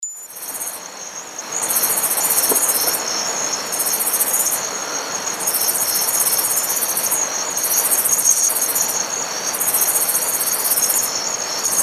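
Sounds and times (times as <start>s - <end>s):
steady high insect hiss: 0.0s - 11.8s
grasshopper buzzy song: 0.1s - 11.8s.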